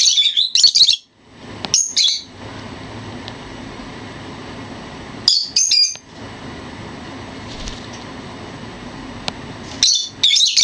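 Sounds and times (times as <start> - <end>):
bird twittering training song: 0.0 - 1.1, 1.7 - 2.3, 5.3 - 6.0, 9.8 - 10.6.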